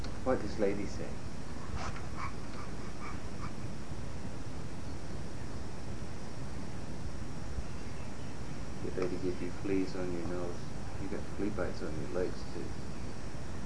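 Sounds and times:
hiss: 0:00.0 - 0:13.6
speech: 0:00.2 - 0:02.8, 0:08.8 - 0:12.9
dog whimpering: 0:02.1 - 0:03.6.

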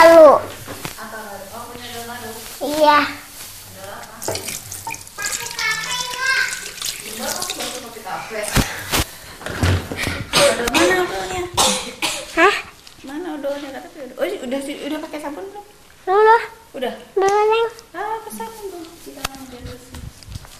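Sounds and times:
people talking: 0:00.0 - 0:04.6, 0:05.2 - 0:09.0, 0:10.1 - 0:20.2
running tap water as hands are washed at a sink: 0:04.1 - 0:08.8.

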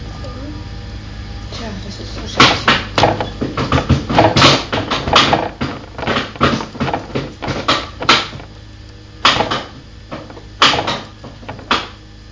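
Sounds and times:
chair clattering and banging about: 0:02.1 - 0:08.6, 0:09.2 - 0:12.0.

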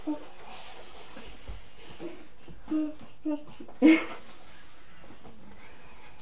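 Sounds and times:
snake hissing: 0:00.0 - 0:02.4, 0:04.1 - 0:05.4.

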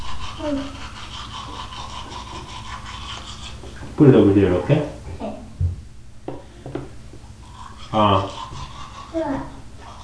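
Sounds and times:
toothbrush scrubbing teeth: 0:00.0 - 0:04.3, 0:07.4 - 0:10.0
child vocalizing: 0:00.4 - 0:00.9, 0:09.0 - 0:09.6
speech: 0:00.4 - 0:00.9, 0:04.0 - 0:05.0, 0:07.9 - 0:08.4.

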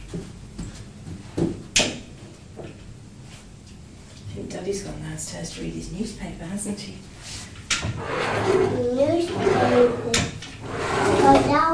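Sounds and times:
speech: 0:04.7 - 0:10.3
drawer with wooden runners sliding open and shut: 0:07.7 - 0:11.7
wooden drawer runners scraping and squeaking: 0:07.7 - 0:11.7.

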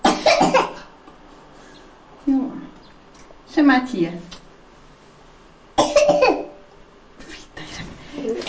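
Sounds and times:
small child coughing: 0:00.0 - 0:00.9, 0:05.8 - 0:06.6
speech: 0:03.6 - 0:04.4.

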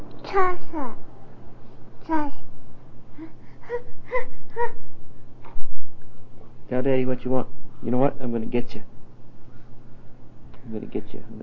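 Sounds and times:
low steady hum: 0:00.0 - 0:11.4
speech: 0:00.3 - 0:01.1, 0:02.1 - 0:02.4, 0:06.7 - 0:08.9, 0:10.7 - 0:11.4
baby fussing with short whimpering moans: 0:03.1 - 0:05.7.

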